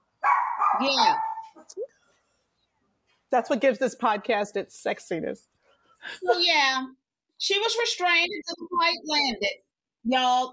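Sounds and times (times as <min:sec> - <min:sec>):
dogs barking: 0:00.2 - 0:01.7
speech: 0:00.8 - 0:01.9, 0:03.3 - 0:10.5.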